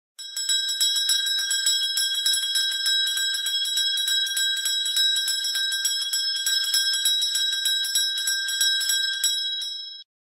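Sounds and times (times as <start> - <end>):
small bells ringing: 0.2 - 10.1.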